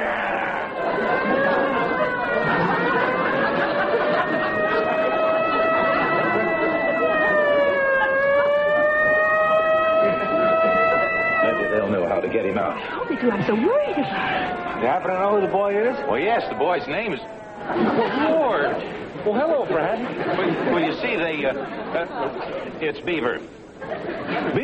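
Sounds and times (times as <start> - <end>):
wailing fire engine sirens: 0.0 - 19.2
crowd murmur: 0.0 - 24.6
laughter: 0.0 - 24.6
street noise: 0.0 - 24.6
speech: 12.8 - 24.6.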